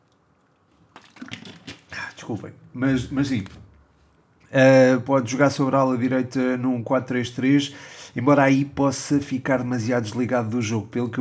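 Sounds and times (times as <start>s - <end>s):
person sipping and swallowing water: 0.2s - 3.6s
speech: 2.2s - 3.6s, 4.5s - 11.1s.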